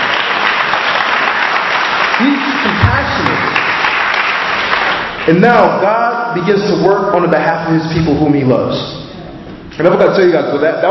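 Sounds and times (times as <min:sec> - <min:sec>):
crowd clapping: 0:00.0 - 0:05.8
speech: 0:05.3 - 0:09.0, 0:09.8 - 0:10.8.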